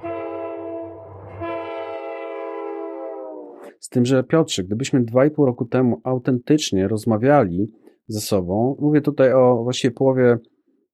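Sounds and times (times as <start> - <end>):
loud sustained train horn blaring: 0.0 - 3.7
speech: 3.8 - 10.5.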